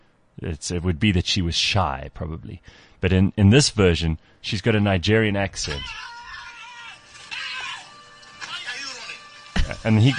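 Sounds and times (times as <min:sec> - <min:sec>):
speech: 0:00.4 - 0:06.1, 0:09.8 - 0:10.1
person imitating the scream of a cartoon character running away: 0:05.7 - 0:07.9.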